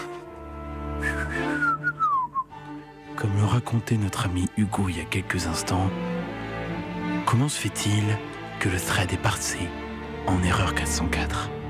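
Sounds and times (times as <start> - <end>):
breathy pan flute melody: 0.0 - 2.9
speech: 3.4 - 6.1, 7.3 - 11.6.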